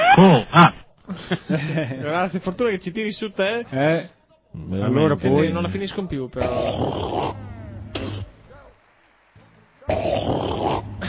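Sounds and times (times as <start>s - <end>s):
laughter: 0.0s - 2.4s, 9.5s - 11.0s
speech: 0.2s - 7.4s
toy robot snoring: 6.4s - 8.3s, 9.9s - 11.0s.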